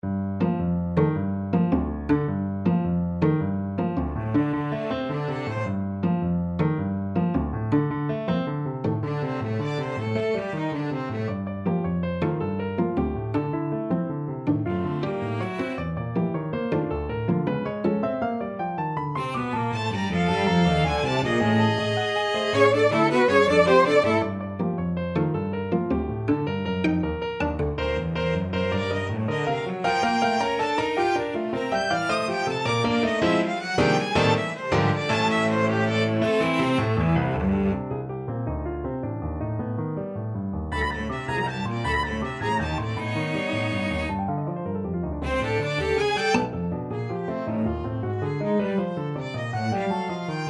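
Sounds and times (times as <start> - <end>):
piano quartet playing a gigue: 0.0 - 50.4.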